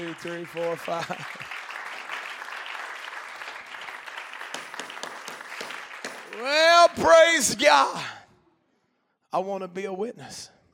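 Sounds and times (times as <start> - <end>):
applause at a church service: 0.0 - 7.4
speech: 0.1 - 1.5, 6.4 - 8.2, 9.3 - 10.6.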